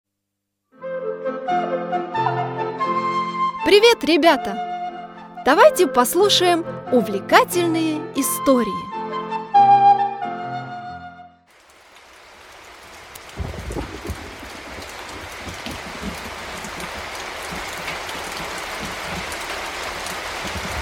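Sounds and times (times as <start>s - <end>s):
short musical intro: 0.8s - 11.4s
speech: 3.7s - 4.7s, 5.4s - 9.0s
steady rain hissing: 11.5s - 20.8s.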